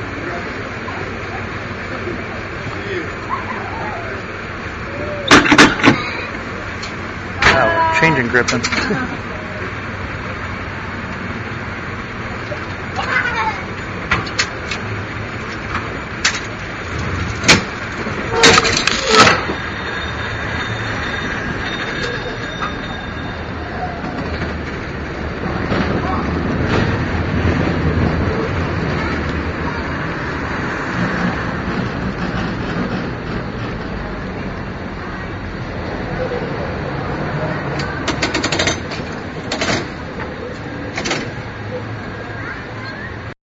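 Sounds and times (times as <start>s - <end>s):
street noise: 0.0s - 43.4s
clanking rumbling mechanism of the cable car: 3.2s - 36.5s, 37.4s - 42.2s
speech: 8.2s - 9.4s.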